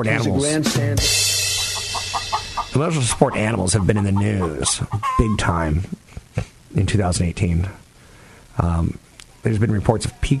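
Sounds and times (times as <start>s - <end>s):
speech: 0.0s - 1.4s, 2.8s - 7.8s, 8.6s - 10.3s
constant hissy background: 0.0s - 10.3s
chicken squawking and clucking: 1.6s - 5.6s.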